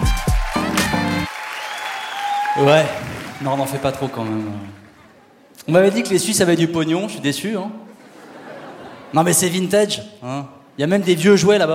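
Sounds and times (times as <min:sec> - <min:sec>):
live comedy-show audience clapping: 0:00.0 - 0:05.2
whooping cheers from audience: 0:01.3 - 0:04.0
speech: 0:02.6 - 0:04.8, 0:05.6 - 0:07.8, 0:09.1 - 0:11.7
laughter: 0:07.9 - 0:09.4.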